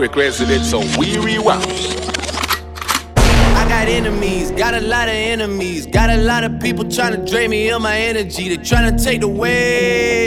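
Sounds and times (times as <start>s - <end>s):
speech: 0.0s - 2.0s, 3.7s - 10.2s
gunshot sound effects: 3.2s - 5.8s
loud sudden blast: 3.2s - 6.3s.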